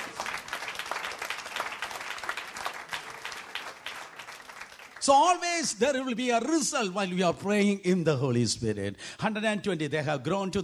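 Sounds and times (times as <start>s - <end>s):
audience applauding at a preacher's urging: 0.0s - 5.4s
speech: 5.0s - 10.6s.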